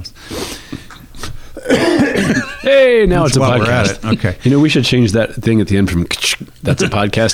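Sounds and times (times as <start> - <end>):
faint room hum: 0.0 - 7.3
person coughing: 1.6 - 2.6
laughter: 2.1 - 4.7, 6.6 - 7.1
speech: 2.7 - 7.3.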